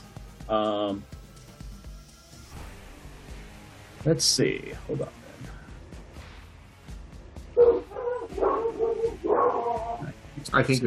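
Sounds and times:
speech: 0.5 - 1.2, 4.0 - 5.2, 10.4 - 10.8
dog barking in whining yip-like bursts: 7.6 - 10.0.

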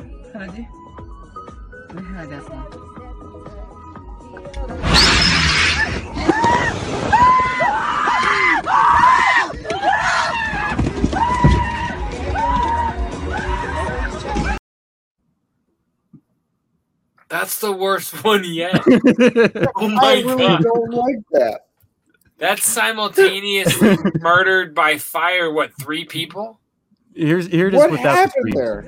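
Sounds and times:
speech: 0.4 - 0.8, 1.9 - 3.0, 4.3 - 5.1, 17.6 - 21.6, 22.4 - 26.6, 27.2 - 28.8
loud crash in a played video: 4.8 - 7.3
shrill wavering screams in a played video: 4.8 - 14.0
laughter: 18.3 - 21.2, 23.2 - 24.8.

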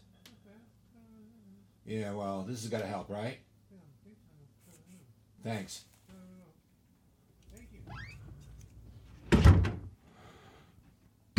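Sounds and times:
speech: 1.8 - 3.5, 5.4 - 5.9
door squeak: 7.9 - 8.5
door thudding shut: 9.2 - 9.9.

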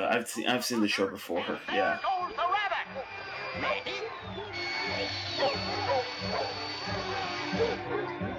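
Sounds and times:
speech: 0.1 - 2.4, 3.0 - 4.4, 5.0 - 8.3
several dogs barking and yipping excitedly: 3.0 - 8.3.

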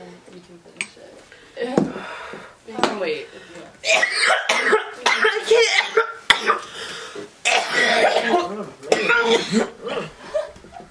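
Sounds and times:
speech: 1.6 - 4.4
person coughing harshly: 3.8 - 6.7, 7.5 - 10.5.

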